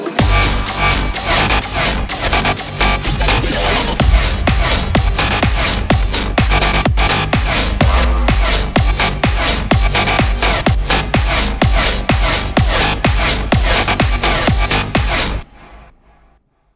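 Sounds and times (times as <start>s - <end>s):
bass house music: 0.2s - 15.8s.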